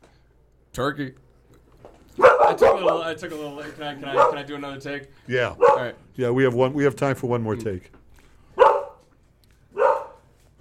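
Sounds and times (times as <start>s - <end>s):
speech: 0.8s - 1.2s, 2.2s - 8.0s
dog barking in a hallway: 2.2s - 3.1s, 4.1s - 4.5s, 5.6s - 6.0s, 8.5s - 9.1s, 9.7s - 10.3s.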